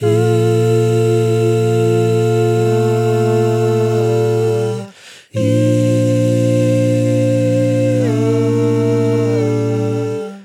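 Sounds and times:
dry vocals: 0.0 - 10.4.

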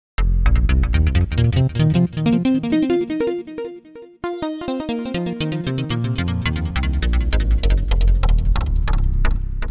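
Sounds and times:
deep bass with delay effect: 0.2 - 3.4, 5.3 - 9.6.

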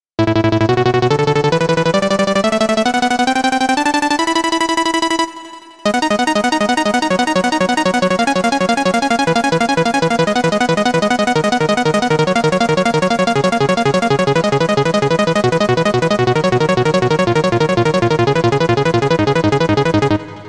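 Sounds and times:
fast arpeggio: 1.2 - 20.4.

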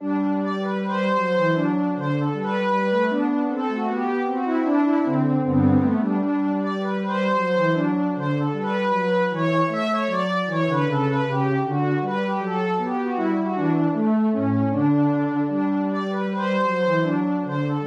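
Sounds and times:
Prophet T8 synthesizer strings: 0.1 - 17.8.

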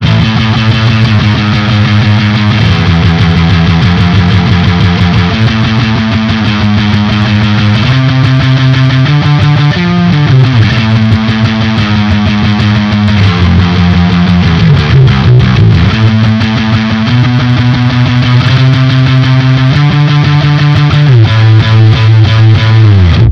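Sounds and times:
fuzzy bass: 0.0 - 23.2.

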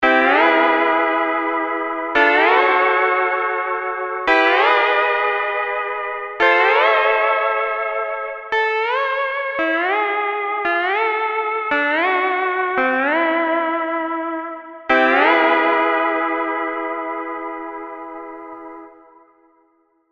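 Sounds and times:
lap steel guitar: 0.2 - 18.9.

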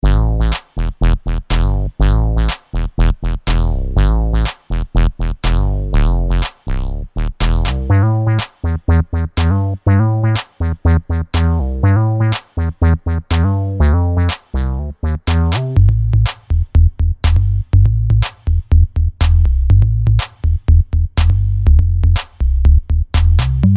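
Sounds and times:
wired bass sounds: 0.0 - 23.7.

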